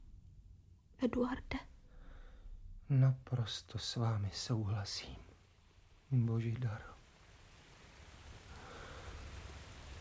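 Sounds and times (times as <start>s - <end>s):
speech: 1.0s - 1.6s, 2.9s - 5.3s, 6.1s - 7.0s
steady rainfall starting: 2.9s - 9.9s.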